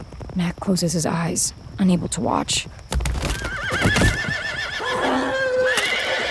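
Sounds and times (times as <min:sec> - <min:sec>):
speech: 0:00.4 - 0:02.9
horses falling into a canvas-covered trench with heavy thuds and scrambling: 0:02.9 - 0:04.5
horses whinnying shrilly: 0:03.1 - 0:06.3.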